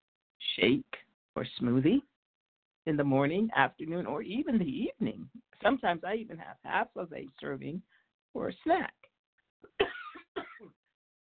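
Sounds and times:
speech: 0:00.6 - 0:02.1, 0:02.8 - 0:09.0
faint breath: 0:07.8 - 0:08.2
harsh coughs: 0:09.7 - 0:10.8.

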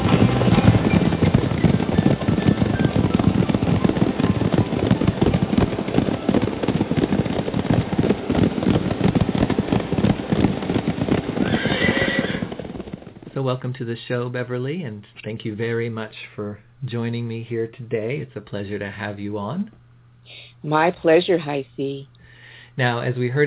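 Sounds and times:
galloping horse hooves sound effect: 0:00.0 - 0:13.7
horse whinnying: 0:11.4 - 0:12.6
speech: 0:13.5 - 0:22.1, 0:22.8 - 0:23.4.

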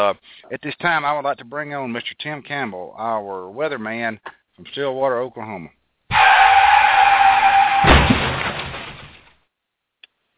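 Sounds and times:
speech: 0:00.0 - 0:06.2
car tires screeching as a tornado slings the car: 0:06.1 - 0:08.1
heavy car crash: 0:06.1 - 0:09.3
glass shattering: 0:07.3 - 0:09.3
debris clattering and tumbling: 0:07.7 - 0:09.4.

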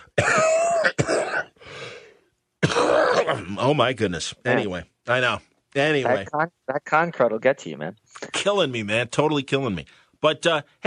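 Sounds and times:
person coughing: 0:00.0 - 0:01.6, 0:02.6 - 0:03.6
speech: 0:03.3 - 0:10.8.

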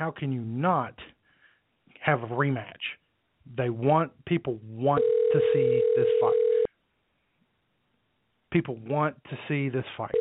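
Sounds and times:
speech: 0:00.0 - 0:01.1, 0:02.0 - 0:06.4, 0:08.5 - 0:10.1
steady telephone dial tone: 0:05.0 - 0:06.7.

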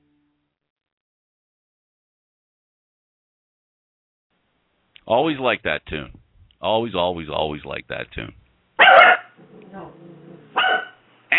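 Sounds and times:
speech: 0:05.1 - 0:09.0
angry dog barking: 0:08.8 - 0:11.0
dog growling low: 0:09.4 - 0:10.6.

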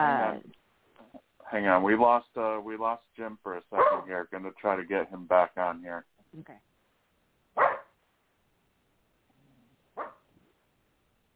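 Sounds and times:
speech: 0:01.5 - 0:06.7
dog barking: 0:03.8 - 0:04.1, 0:07.6 - 0:08.0, 0:10.0 - 0:10.3.

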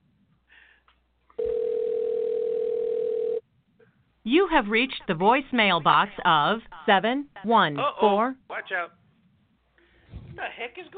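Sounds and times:
ringing tone on an outgoing phone call: 0:01.4 - 0:03.4
speech: 0:04.2 - 0:09.0, 0:10.4 - 0:10.9.

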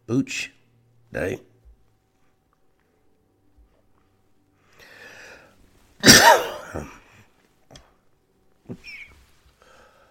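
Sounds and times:
speech: 0:00.1 - 0:01.5
person coughing harshly: 0:06.0 - 0:07.1.

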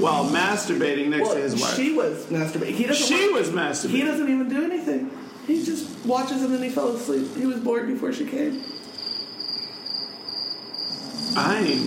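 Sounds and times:
speech: 0:00.0 - 0:08.8, 0:11.4 - 0:11.8
crickets chirring: 0:05.2 - 0:07.3, 0:08.2 - 0:11.8.

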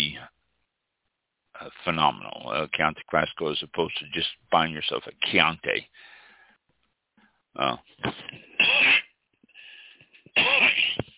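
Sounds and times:
speech: 0:01.8 - 0:06.1, 0:07.6 - 0:08.4
harsh coughing from a scratchy pollen-irritated throat: 0:08.0 - 0:09.2, 0:10.2 - 0:11.1.

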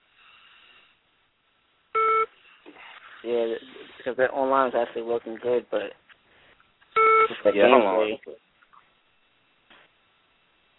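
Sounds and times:
short electronic beep from a mobile phone: 0:02.0 - 0:02.3, 0:07.0 - 0:07.4
speech: 0:03.2 - 0:06.0, 0:07.3 - 0:08.4.

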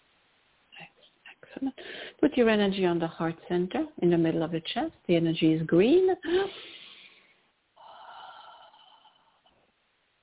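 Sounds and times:
speech: 0:01.6 - 0:06.7
deep breath during a guided chakra meditation: 0:01.8 - 0:02.2, 0:06.3 - 0:09.7.

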